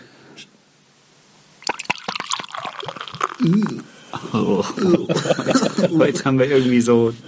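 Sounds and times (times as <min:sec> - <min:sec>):
beer pouring into a glass: 0:01.6 - 0:04.0
short low vocal sound: 0:03.4 - 0:04.7
laughter: 0:03.4 - 0:06.5
speech: 0:03.4 - 0:07.2.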